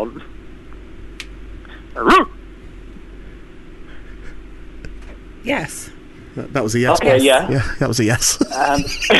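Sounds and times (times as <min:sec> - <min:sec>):
speech: 0:02.0 - 0:02.3, 0:05.4 - 0:09.1
dog barking: 0:02.0 - 0:02.4
laughter: 0:03.9 - 0:04.4, 0:07.5 - 0:09.1.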